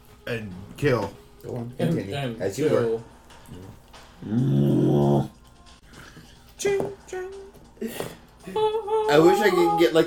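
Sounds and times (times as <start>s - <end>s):
speech: 0.3s - 5.4s, 7.8s - 10.0s
person imitating an animal with a growling roar: 4.2s - 5.4s.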